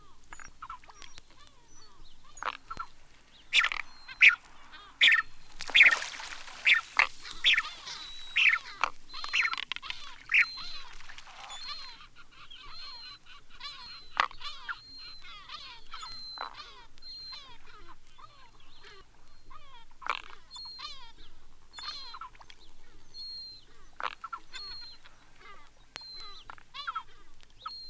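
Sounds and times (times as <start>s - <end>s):
steamer duck calling in harsh broad bursts: 3.5s - 10.6s
steamer duck thin high whistles: 3.6s - 11.9s.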